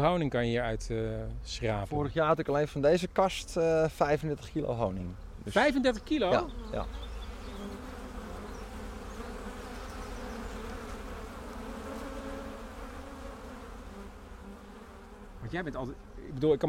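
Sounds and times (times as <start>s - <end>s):
speech: 0.0s - 7.1s, 15.5s - 16.6s
honeybees buzzing around a beehive: 4.5s - 16.6s.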